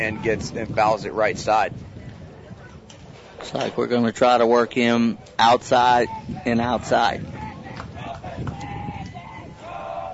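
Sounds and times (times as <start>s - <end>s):
speech: 0.0s - 1.9s, 3.4s - 7.3s
baseball stadium crowd roaring: 5.1s - 10.1s
crowd shouts and whistles: 5.7s - 10.1s.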